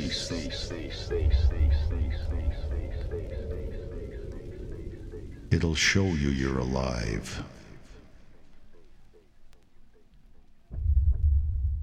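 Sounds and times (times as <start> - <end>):
deep throbbing bass pulses: 0.0 - 5.9, 10.7 - 11.8
speech: 5.6 - 7.5.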